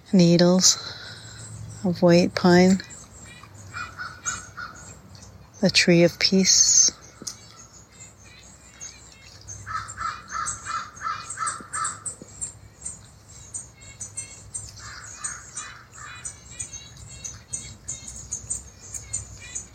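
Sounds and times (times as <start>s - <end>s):
other birds chirping and twittering outdoors: 0.0s - 19.7s
speech: 0.1s - 1.0s, 1.8s - 2.9s, 5.6s - 7.0s
crow cawing: 3.5s - 4.9s, 9.7s - 12.2s, 14.8s - 16.3s.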